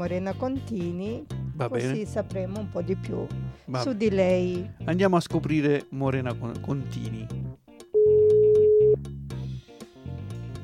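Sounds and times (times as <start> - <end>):
speech: 0.0 - 7.6
rhythmic music bed: 0.0 - 10.6
telephone ringback tone on an outgoing call: 8.0 - 9.0.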